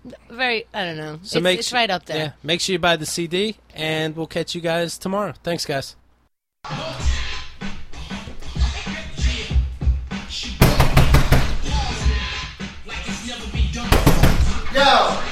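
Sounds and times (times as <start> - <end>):
speech: 0.0 - 6.0, 6.6 - 6.9
noise: 0.0 - 15.3
loud sharp knocking on a door: 10.6 - 11.6, 13.9 - 14.6.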